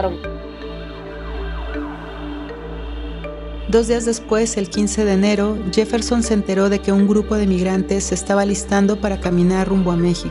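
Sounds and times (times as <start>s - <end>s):
speech: 0.0s - 0.5s, 3.7s - 10.2s
police car siren wailing: 0.0s - 5.9s
steady low engine-like drone: 0.0s - 10.2s.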